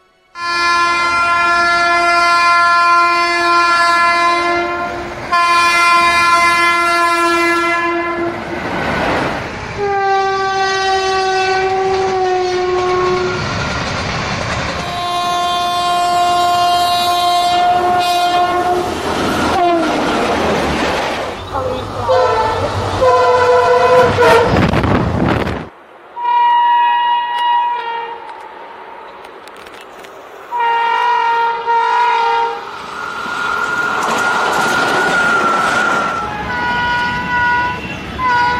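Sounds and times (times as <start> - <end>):
train horn blaring in long sustained blasts: 0.0 - 8.5, 9.8 - 13.5, 14.8 - 20.0, 21.6 - 24.8, 26.2 - 28.5, 30.5 - 32.7, 35.0 - 38.5
heavy rumble and clatter of a passing train: 1.0 - 26.1, 27.2 - 38.5.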